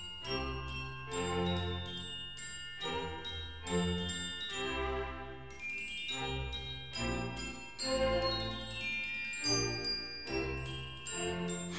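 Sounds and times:
glockenspiel playing a short bright melody: 0:00.0 - 0:11.7
musical accompaniment: 0:00.0 - 0:11.7.

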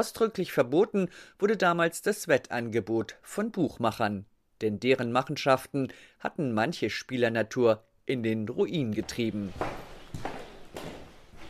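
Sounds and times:
speech: 0:00.0 - 0:09.8
footsteps of a man leaving a museum: 0:08.9 - 0:11.4.

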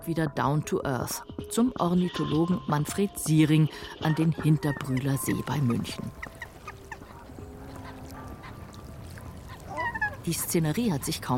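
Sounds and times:
speech: 0:00.0 - 0:06.4, 0:10.3 - 0:11.3
geese honking at a lake: 0:04.1 - 0:11.3.

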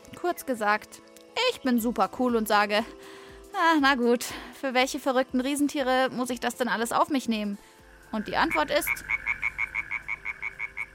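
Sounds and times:
speech: 0:00.2 - 0:09.2
frogs croaking: 0:07.8 - 0:10.9.

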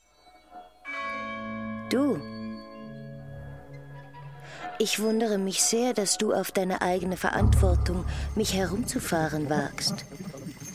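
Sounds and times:
faint chime: 0:00.0 - 0:04.8, 0:08.1 - 0:10.7
bell ringing with bright sustained metallic tone: 0:00.6 - 0:04.8, 0:07.4 - 0:10.7
speech: 0:01.9 - 0:02.4, 0:04.8 - 0:10.4.

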